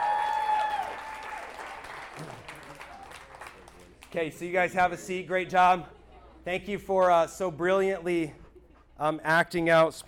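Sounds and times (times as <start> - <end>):
crowd applauding: 0.0 - 4.3
speech: 4.1 - 8.4, 9.0 - 10.0.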